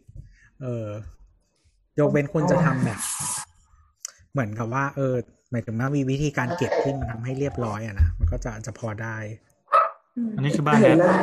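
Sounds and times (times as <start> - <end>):
speech: 0.6 - 1.2, 2.0 - 3.4, 4.4 - 9.5, 10.2 - 11.2
dog barking: 9.7 - 10.1.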